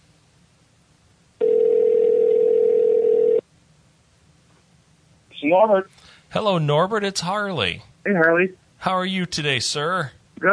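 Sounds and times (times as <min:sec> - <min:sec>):
telephone dial tone: 0:01.4 - 0:03.4
speech: 0:05.5 - 0:10.5.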